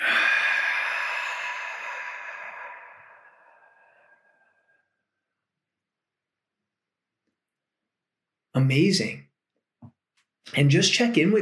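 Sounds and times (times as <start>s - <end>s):
long deep breath out during a guided breathing exercise: 0.0s - 5.1s
speech: 8.6s - 9.2s, 10.5s - 11.4s.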